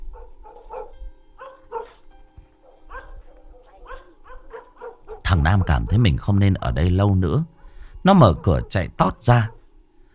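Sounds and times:
dog barking furiously: 0.2s - 2.0s, 2.8s - 6.1s, 8.2s - 9.6s
speech: 5.3s - 9.6s.

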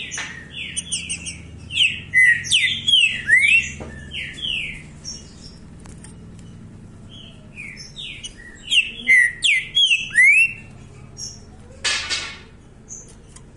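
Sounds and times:
faint high twittering: 0.0s - 11.5s
green-winged saltator singing rich whistled phrases of sliding notes: 0.6s - 4.7s, 7.2s - 10.6s.

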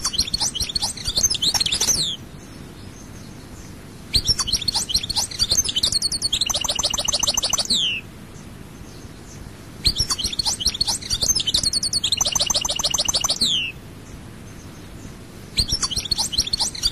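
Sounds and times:
European goldfinch twittering: 0.0s - 2.2s, 4.1s - 8.0s, 9.8s - 13.8s, 15.6s - 16.9s.

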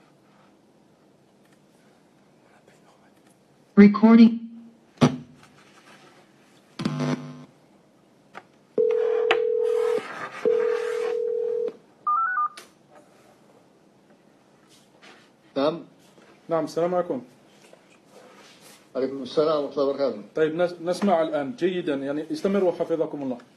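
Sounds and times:
speech: 3.8s - 4.4s, 16.6s - 17.4s, 19.0s - 23.5s
telephone call tones as a call is placed: 8.8s - 12.6s.

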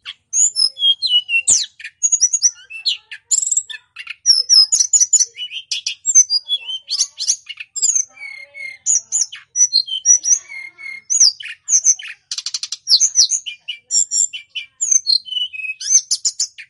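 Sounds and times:
snowy-browed flycatcher song of varied high whistled notes and chattering chirps: 0.0s - 16.6s.

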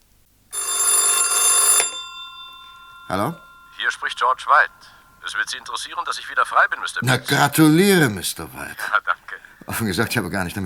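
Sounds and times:
telephone bell ringing: 0.5s - 7.0s
speech: 3.1s - 9.0s, 9.7s - 10.6s.

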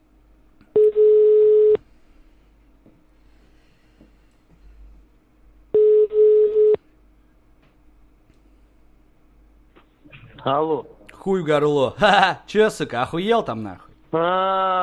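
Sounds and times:
telephone ringback tone while a number is redialed: 0.8s - 1.8s, 5.8s - 6.8s
speech: 10.4s - 14.8s.

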